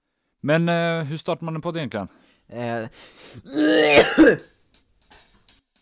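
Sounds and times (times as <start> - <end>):
speech: 0.4 - 4.6
person coughing from a cold: 3.4 - 4.5
throat clearing from a person with a cold: 3.5 - 4.5.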